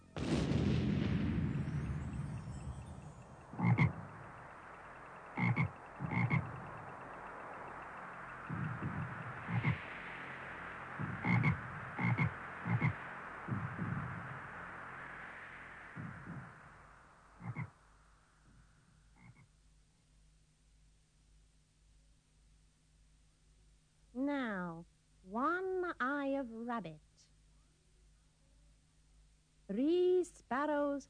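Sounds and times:
steady hiss: 0:00.0 - 0:31.0
frog croaking: 0:03.0 - 0:15.2, 0:16.0 - 0:17.8, 0:19.1 - 0:19.5
speech: 0:26.8 - 0:27.3, 0:29.7 - 0:31.0.

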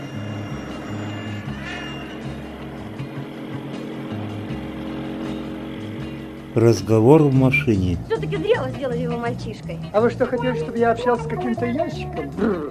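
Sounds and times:
motorcycle engine droning as the rider sets off: 0:00.0 - 0:09.4
speech: 0:06.6 - 0:12.6.

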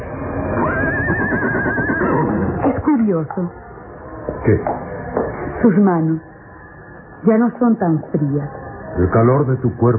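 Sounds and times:
horse neighing: 0:00.5 - 0:02.8
speech: 0:03.0 - 0:03.8, 0:04.4 - 0:05.0, 0:05.6 - 0:06.3, 0:07.2 - 0:09.9.

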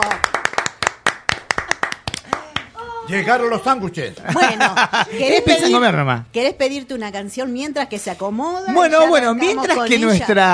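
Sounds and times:
people applauding someone arriving: 0:00.0 - 0:02.8
speech: 0:03.1 - 0:10.5
laughter: 0:04.2 - 0:05.6.

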